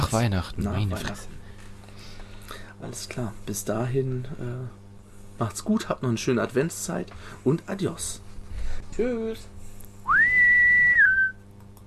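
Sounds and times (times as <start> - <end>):
speech: 0.2 - 1.4, 2.8 - 4.8, 5.4 - 8.2, 8.9 - 9.6
single sustained human whistle: 10.0 - 11.4.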